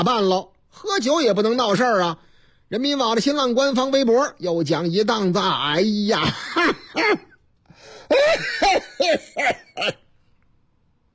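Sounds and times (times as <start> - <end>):
speech: 0.0 - 7.3, 8.1 - 10.0
person coughing harshly: 6.3 - 10.1.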